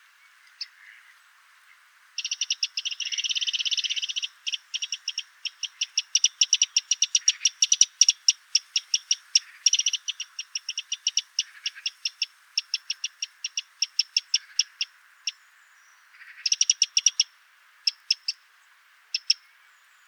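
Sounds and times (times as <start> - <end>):
Eurasian wren Troglodytes troglodytes giving hard dry tick calls: 2.2 - 15.4, 16.2 - 17.3, 17.9 - 18.4, 19.1 - 19.5.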